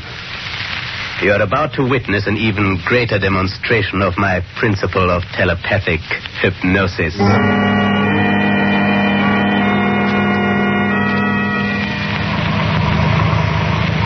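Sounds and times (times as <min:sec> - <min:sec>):
speech: 0:01.2 - 0:07.8
car engine humming while pulling over to the curb: 0:07.1 - 0:14.0.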